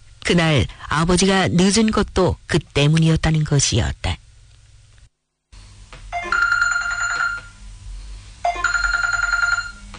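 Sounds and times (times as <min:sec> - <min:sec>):
speech: 0:00.3 - 0:04.2
telephone ringing in an electronic trill: 0:06.1 - 0:07.6, 0:08.4 - 0:09.9.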